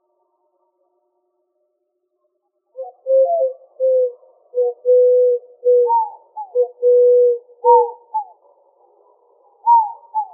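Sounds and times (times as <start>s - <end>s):
Eurasian collared dove cooing in Arizona, United States: 2.8s - 8.4s, 9.6s - 10.3s.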